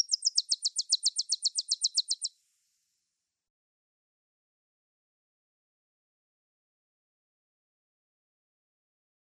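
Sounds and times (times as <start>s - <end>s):
Tennessee warbler song: 0.0s - 3.0s.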